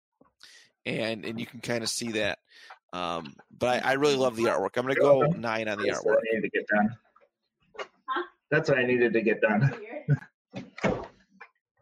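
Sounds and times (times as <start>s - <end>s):
speech: 0.8s - 7.0s, 7.8s - 11.0s
door opening: 10.6s - 11.2s.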